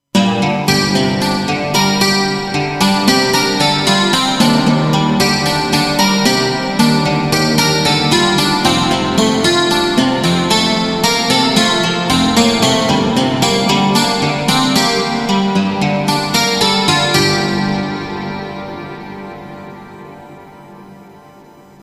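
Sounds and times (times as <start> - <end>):
hard steel guitar: 0.1 - 21.8.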